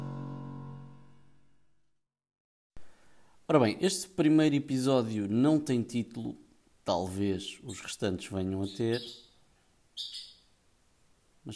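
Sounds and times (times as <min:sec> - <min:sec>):
quiet hiss: 0:02.8 - 0:11.5
speech: 0:03.5 - 0:09.2, 0:10.0 - 0:10.3
bird chirping: 0:07.4 - 0:10.6.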